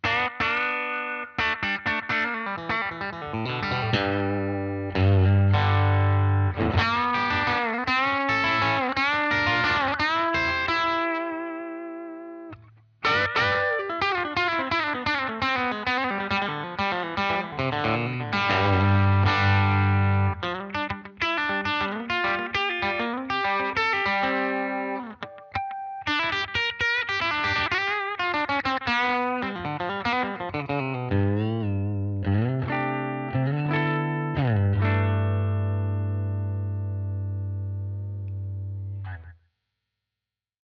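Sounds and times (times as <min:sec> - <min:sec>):
clean electric guitar on bridge pickup: 0:00.0 - 0:39.4.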